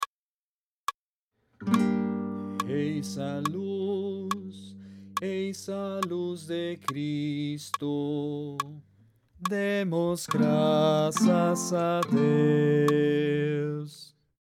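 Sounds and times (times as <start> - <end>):
bass voice singing a Christian chant in Portuguese: 2.6 - 14.1.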